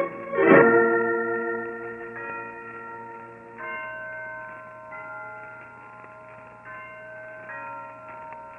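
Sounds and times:
church tower bells ringing: 0:00.0 - 0:08.5.

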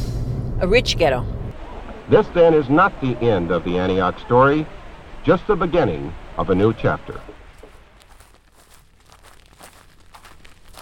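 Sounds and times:
speech: 0:00.6 - 0:01.4, 0:02.1 - 0:07.4
footsteps crunching through dry grass: 0:07.1 - 0:10.8.

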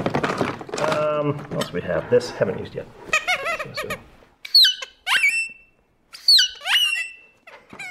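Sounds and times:
speech: 0:01.2 - 0:03.2, 0:03.8 - 0:04.1
toy squeak box making warbling pitch-bending squeals: 0:03.1 - 0:07.8.

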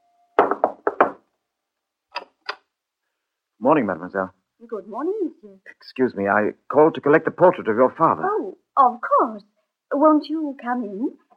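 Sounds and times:
knocking on a wooden door: 0:00.4 - 0:01.2
speech: 0:03.6 - 0:11.2.

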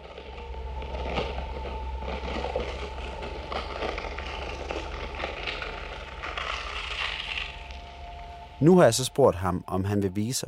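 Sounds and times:
dense crackling and rustling compost heap sounds: 0:00.0 - 0:09.3
faint sustained tone: 0:00.0 - 0:10.4
steady low drone: 0:00.0 - 0:10.4
speech: 0:08.6 - 0:10.4.

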